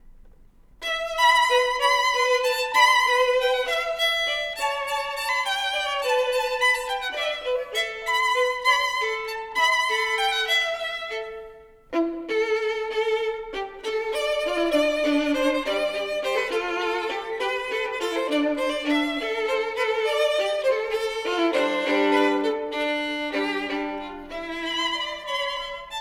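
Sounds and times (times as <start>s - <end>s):
duo for two violins: 0.8s - 25.9s.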